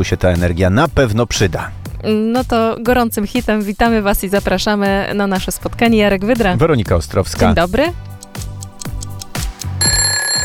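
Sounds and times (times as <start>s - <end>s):
speech: 0.0s - 8.1s
high steady alarm clock ringing tones: 9.8s - 10.4s.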